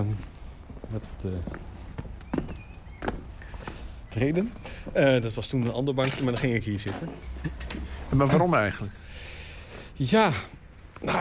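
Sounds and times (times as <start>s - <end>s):
footsteps crunching along a forest path: 0.0s - 5.7s
speech: 0.9s - 1.8s, 4.2s - 9.0s, 10.0s - 11.1s.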